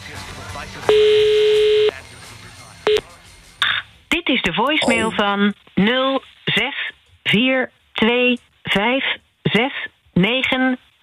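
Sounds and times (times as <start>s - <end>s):
buzzy mid-pitched telephone ringback tone on an outgoing call: 0.9s - 1.9s
speech: 4.5s - 11.0s.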